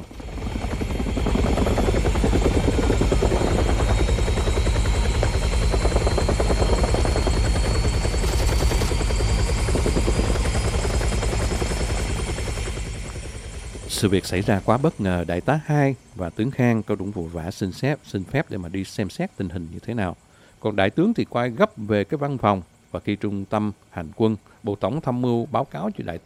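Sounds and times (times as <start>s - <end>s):
helicopter rotor chopping: 0.0s - 17.4s
helicopter turbine whine: 0.0s - 26.2s
speech: 14.0s - 26.2s.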